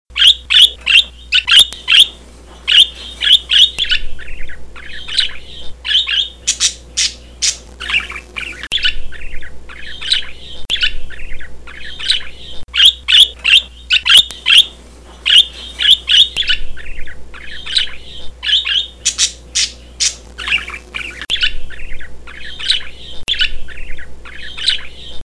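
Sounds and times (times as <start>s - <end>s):
budgerigar voice: 0.1s - 25.2s.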